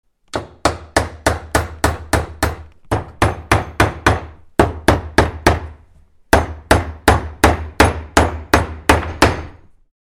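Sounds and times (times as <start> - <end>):
hammering at a worksite: 0.3 - 9.8.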